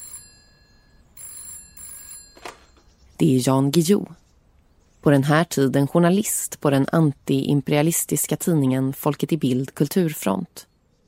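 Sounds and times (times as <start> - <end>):
telephone bell ringing in a political bookshop in Gothenburg Sweden: 0.0 - 2.9
speech: 3.2 - 4.2, 5.0 - 10.7.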